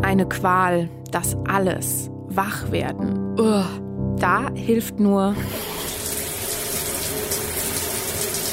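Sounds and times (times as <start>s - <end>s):
speech: 0.1s - 5.9s
shower running with warm water: 5.4s - 8.5s.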